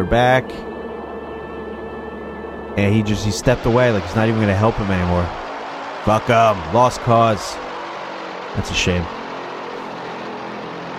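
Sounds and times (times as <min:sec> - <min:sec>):
speech: 0:00.0 - 0:00.7, 0:02.8 - 0:05.4, 0:06.0 - 0:07.6, 0:08.5 - 0:09.2
propeller airplane engine droning: 0:00.0 - 0:10.9.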